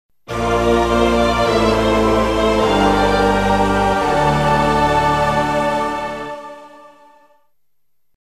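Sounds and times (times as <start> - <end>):
music fanfare for item acquisition: 0.3 - 7.3.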